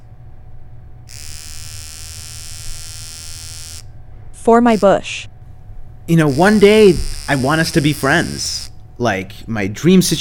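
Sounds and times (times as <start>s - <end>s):
electric hair clippers buzzing: 1.1s - 3.9s, 4.6s - 5.2s, 6.1s - 8.8s
speech: 4.4s - 5.3s, 6.1s - 10.1s.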